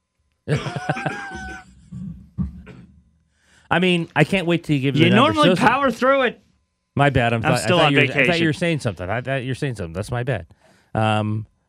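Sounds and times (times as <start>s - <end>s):
speech: 0.5s - 1.2s, 3.7s - 6.4s, 7.0s - 11.5s
laughter: 0.5s - 1.6s, 5.0s - 5.7s, 7.5s - 9.0s
person coughing in a raspy throaty fit: 0.5s - 3.0s.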